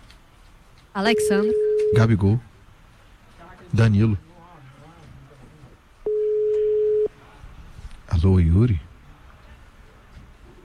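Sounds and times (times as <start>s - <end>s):
faint noise: 0.0s - 10.6s
speech: 1.0s - 2.5s, 3.7s - 4.3s, 8.2s - 8.9s
telephone call busy signal: 1.1s - 2.1s, 6.1s - 7.1s.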